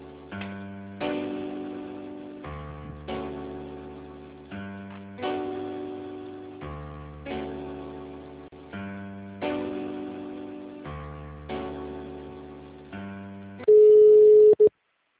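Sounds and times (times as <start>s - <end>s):
telephone ringing tone: 13.7s - 14.7s.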